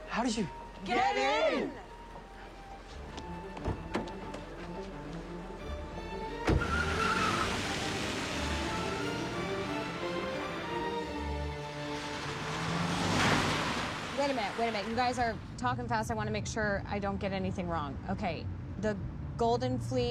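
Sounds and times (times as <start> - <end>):
car driving: 0.0 - 20.0
speech: 0.2 - 1.9, 14.2 - 20.0
sharp knocks and clicks: 3.2 - 4.5.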